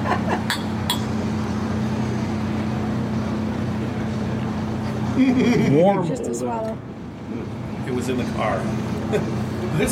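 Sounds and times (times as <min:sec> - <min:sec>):
steady low hum: 0:00.0 - 0:09.9
glasses clinking in a toast: 0:00.5 - 0:01.1
speech: 0:05.2 - 0:09.9.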